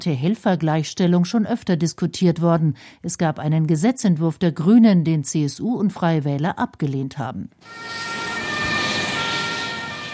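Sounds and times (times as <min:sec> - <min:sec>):
speech: 0:00.0 - 0:08.3
ambulance siren as it drives off from a football stadium square during a rescue exercise: 0:07.6 - 0:10.1
road noise: 0:07.6 - 0:10.1.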